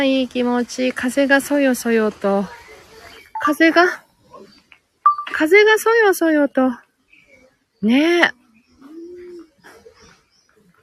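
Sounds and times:
speech: 0.0 - 2.6, 3.4 - 4.0, 5.3 - 6.8, 7.8 - 8.4
birds calling outdoors: 2.1 - 5.8, 6.7 - 10.8
bird cooing outdoors: 8.6 - 10.7.

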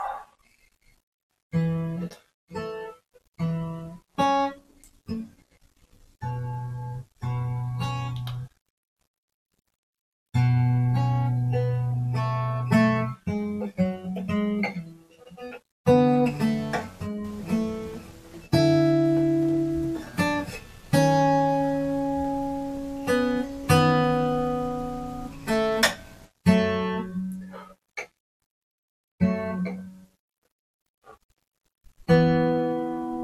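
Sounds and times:
solo fingerstyle acoustic guitar playing: 1.5 - 5.4, 6.2 - 8.5, 10.3 - 28.1, 29.2 - 30.1, 32.0 - 33.2.

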